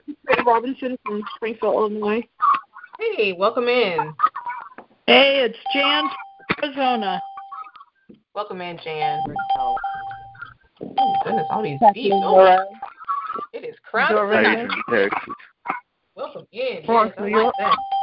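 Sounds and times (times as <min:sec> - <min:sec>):
speech: 0:00.5 - 0:02.4, 0:03.0 - 0:04.2, 0:05.1 - 0:07.3, 0:08.4 - 0:09.9, 0:11.0 - 0:12.9, 0:13.9 - 0:15.4, 0:16.5 - 0:17.9
electronic two-tone conference call join chime: 0:05.6 - 0:07.7, 0:08.8 - 0:13.4, 0:14.1 - 0:15.2, 0:16.9 - 0:18.0
laughter: 0:14.2 - 0:15.6.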